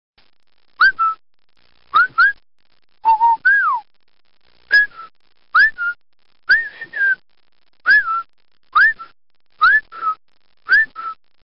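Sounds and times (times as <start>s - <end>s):
man whistling: 0.8s - 1.2s, 2.0s - 2.4s, 3.1s - 3.8s, 4.7s - 7.2s, 7.9s - 11.2s.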